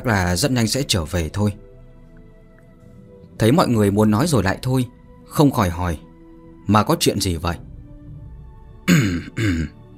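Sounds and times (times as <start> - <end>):
speech: 0.0 - 1.7, 3.4 - 6.0, 6.7 - 7.7, 8.9 - 9.8
old man clearing his throat with dry coughs: 8.9 - 9.8.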